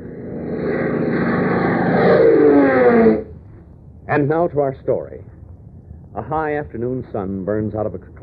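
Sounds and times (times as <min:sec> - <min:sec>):
biplane propeller engine roaring overhead: 0:00.0 - 0:03.5
speech: 0:04.2 - 0:05.3, 0:06.2 - 0:08.2.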